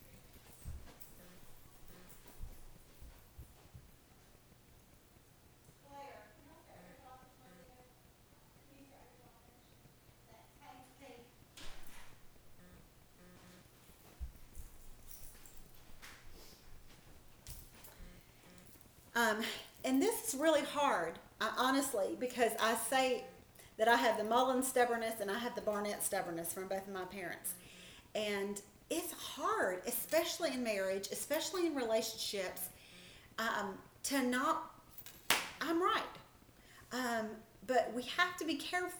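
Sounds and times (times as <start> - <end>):
quiet footsteps crossing a room: 0.0 - 5.8, 11.4 - 27.8
steady low hum: 0.0 - 38.4
speech: 19.4 - 27.6, 28.2 - 32.7, 33.4 - 34.7, 35.7 - 36.2, 36.9 - 38.9.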